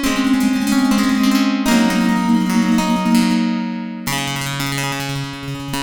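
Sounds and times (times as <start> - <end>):
synthesizers: 0.2 - 5.7.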